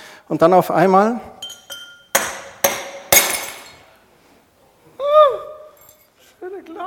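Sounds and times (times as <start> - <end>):
speech: 0.3 - 1.3
drinking glass being smashed: 1.4 - 3.9.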